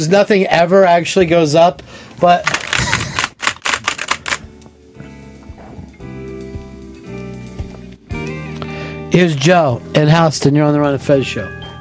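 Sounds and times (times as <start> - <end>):
speech: 0.0 - 2.9, 9.2 - 11.6
rapid clattering keystrokes: 2.4 - 4.5.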